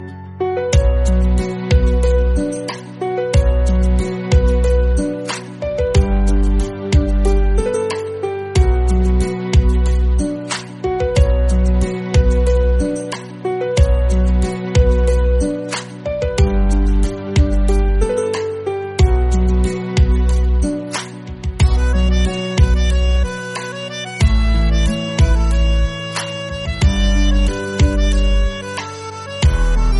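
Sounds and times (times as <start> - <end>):
guitar background music: 0.0 - 29.9.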